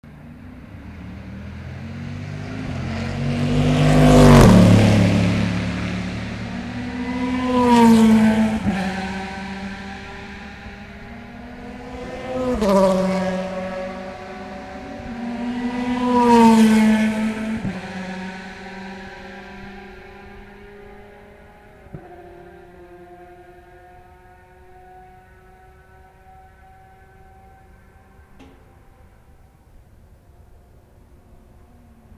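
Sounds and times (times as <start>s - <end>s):
Corvette and Ferrari cars after Mulsanne Corner: 0.0s - 32.1s.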